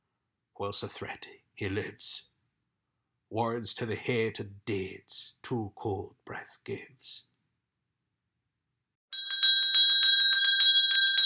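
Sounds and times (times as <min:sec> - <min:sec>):
speech: 0:00.6 - 0:02.3, 0:03.3 - 0:07.3
bell ringing rapidly: 0:09.1 - 0:11.2.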